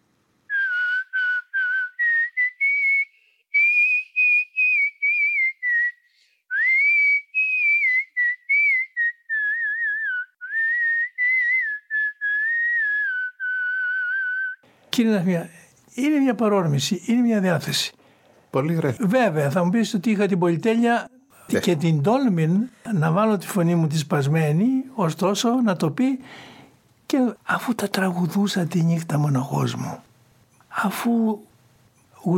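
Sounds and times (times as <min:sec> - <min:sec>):
person whistling a flowing melody: 0:00.5 - 0:14.6
short breaths: 0:03.1 - 0:03.5, 0:06.0 - 0:06.5, 0:18.0 - 0:18.5, 0:26.2 - 0:26.8
speech: 0:15.0 - 0:26.5, 0:27.1 - 0:30.1, 0:30.8 - 0:31.5.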